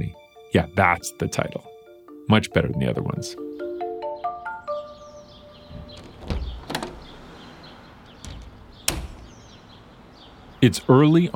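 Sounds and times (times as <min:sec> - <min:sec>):
speech: 0:00.0 - 0:01.7, 0:02.3 - 0:03.6, 0:10.6 - 0:11.3
sharp latch clicks and knocks: 0:05.6 - 0:09.8
back door opening and closing: 0:05.6 - 0:10.5
shuffling rattling movement: 0:05.6 - 0:10.5.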